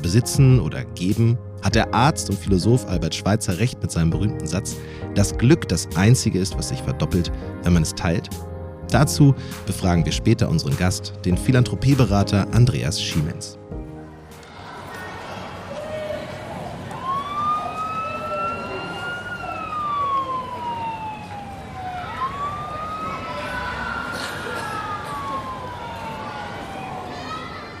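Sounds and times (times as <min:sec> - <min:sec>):
speech: 0:00.0 - 0:13.6
street and traffic noise: 0:13.9 - 0:27.7
ambulance siren wailing: 0:15.8 - 0:27.7.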